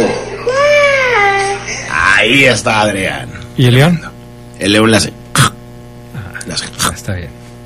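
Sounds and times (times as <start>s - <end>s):
young child imitating a cat meow: 0.4s - 1.6s
speech: 2.2s - 5.2s, 6.6s - 7.4s.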